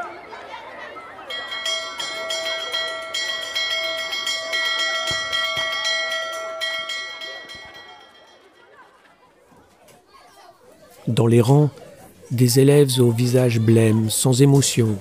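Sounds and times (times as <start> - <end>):
crowd chatter: 0.0 - 14.9
electric school bell ringing: 1.2 - 8.7
speech: 11.1 - 14.9.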